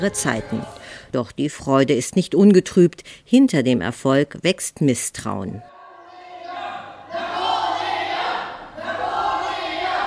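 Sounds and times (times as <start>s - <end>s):
speech: 0.0s - 5.7s
group of farm animals shouting and cheering: 5.7s - 10.0s.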